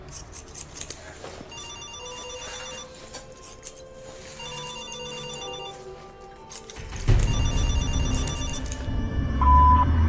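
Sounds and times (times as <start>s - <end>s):
telephone ringing with bright electronic tone: 1.5s - 3.0s, 4.2s - 9.6s.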